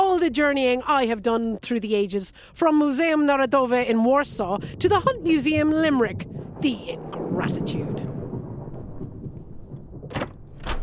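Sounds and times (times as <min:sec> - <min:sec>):
speech: 0:00.2 - 0:08.1
thunderstorm rumbling: 0:02.7 - 0:10.8.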